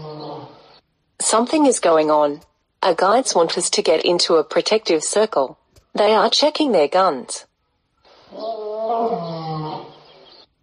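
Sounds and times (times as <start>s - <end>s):
lion roaring in the wild: 0.0s - 0.8s, 8.3s - 10.2s
speech: 1.3s - 7.5s.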